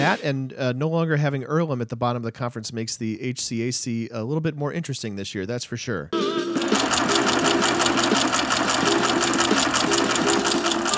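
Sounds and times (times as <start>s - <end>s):
speech: 0.0s - 6.6s
printer printing: 6.4s - 10.9s.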